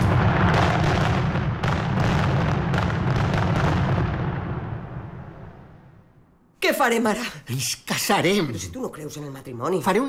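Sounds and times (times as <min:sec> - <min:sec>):
fireworks rockets exploding: 0:00.0 - 0:06.0
speech: 0:06.8 - 0:10.0.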